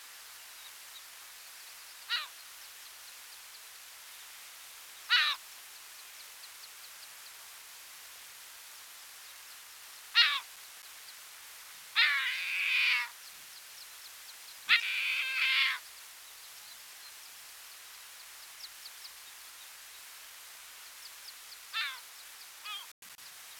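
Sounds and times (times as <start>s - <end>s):
Larus fuscus gulls calling: 2.1s - 2.4s, 5.1s - 5.4s, 10.1s - 10.5s, 12.0s - 13.2s, 14.7s - 15.8s, 21.7s - 22.9s.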